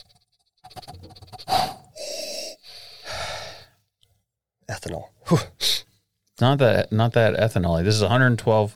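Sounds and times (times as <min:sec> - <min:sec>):
person sniffing bourbon in a glass: 0:00.0 - 0:03.8
speech: 0:04.8 - 0:05.5, 0:06.4 - 0:08.7.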